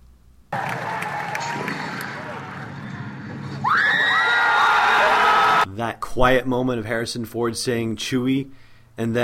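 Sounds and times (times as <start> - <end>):
packed theater audience cheering and screaming at a film screening: 0.5 - 5.7
high shrill shrieks above the crowd: 3.5 - 5.6
speech: 5.9 - 9.2.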